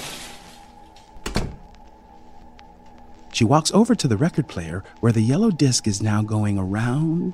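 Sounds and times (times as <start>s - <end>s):
steady low hum and faint hiss: 0.0s - 7.3s
closet door closing: 1.2s - 1.6s
speech: 3.4s - 7.3s.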